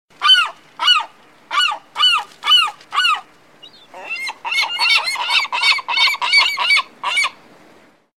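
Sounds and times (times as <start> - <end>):
sea gulls calling: 0.2 - 7.4.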